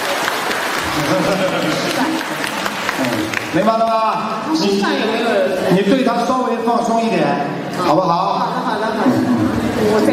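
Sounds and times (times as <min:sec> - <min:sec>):
audience applause: 0:00.0 - 0:04.6
laughter: 0:00.8 - 0:03.2, 0:08.3 - 0:09.9
speech: 0:01.0 - 0:10.1.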